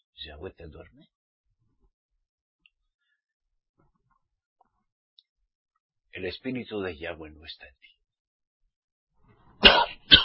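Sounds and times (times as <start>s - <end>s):
speech: 0.2s - 1.2s, 6.2s - 7.9s
preaching person coughing: 9.6s - 10.2s.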